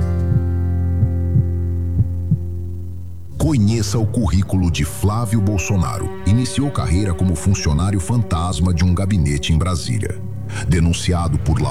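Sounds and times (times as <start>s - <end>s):
heartbeat sound effect thumping: 0.0s - 3.0s
constant low droning hum: 0.0s - 11.6s
speech: 3.5s - 11.6s.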